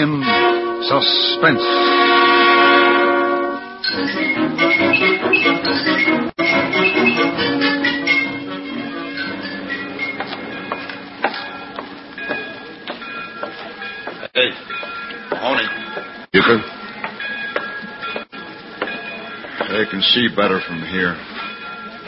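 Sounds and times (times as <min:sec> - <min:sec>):
speech: 0:00.0 - 0:02.2, 0:20.1 - 0:21.3
train horn blast: 0:00.0 - 0:03.8
train rumbling and clattering past: 0:00.0 - 0:22.0.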